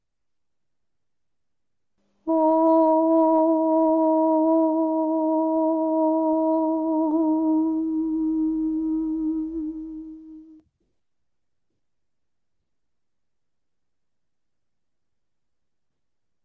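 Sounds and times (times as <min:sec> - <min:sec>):
single voice chanting a high-pitched om drone: 0:02.3 - 0:10.6.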